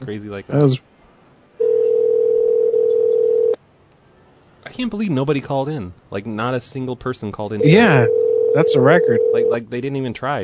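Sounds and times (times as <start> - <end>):
speech: 0.0 - 0.9, 4.8 - 10.4
phone call ringing tone: 1.6 - 3.6, 7.6 - 9.6.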